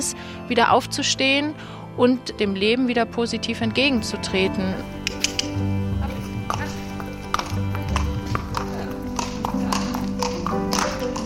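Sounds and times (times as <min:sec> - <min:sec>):
speech: 0:00.0 - 0:05.0
low steady hum: 0:03.6 - 0:09.5
indistinct voices: 0:03.6 - 0:11.2
horse hooves clip-clopping on hard ground in a stable courtyard: 0:03.8 - 0:11.2.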